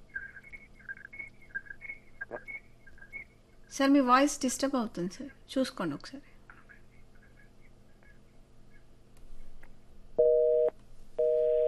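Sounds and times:
faint noise: 0.0 - 11.6
speech: 3.8 - 6.3
telephone busy tone after a call is cut off: 10.2 - 11.6.

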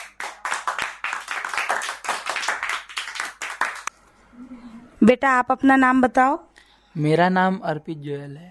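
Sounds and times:
group of children clapping to applaud a child: 0.0 - 3.9
speech: 5.0 - 8.4.

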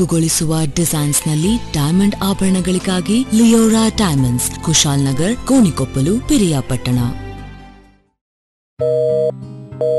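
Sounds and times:
speech: 0.0 - 7.2, 8.8 - 9.9
telephone busy tone beeps: 8.8 - 9.9.

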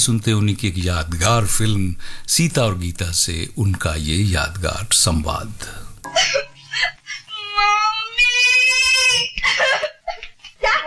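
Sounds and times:
speech: 0.0 - 6.9
girl crying and sobbing in a film drama scene: 6.2 - 10.8.

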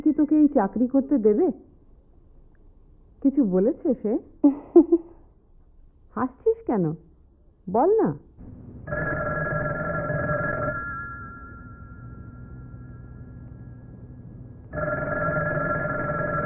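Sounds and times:
speech: 0.2 - 1.8, 3.2 - 5.1, 6.2 - 7.1, 7.7 - 9.3
telephone ringing with long electronic ring bursts: 8.8 - 16.4.

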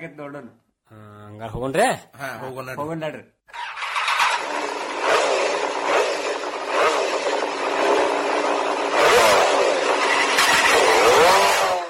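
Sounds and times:
speech: 0.0 - 3.6
new motorcycle engine revving: 3.5 - 11.8.

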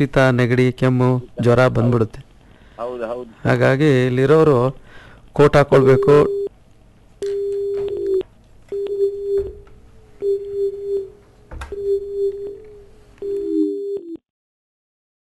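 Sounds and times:
speech: 0.0 - 2.2, 2.8 - 4.8, 5.4 - 6.4
faint low hum: 0.0 - 14.2
telephone busy tone after a cut-off call: 5.9 - 6.5, 7.2 - 9.6, 10.2 - 14.2.

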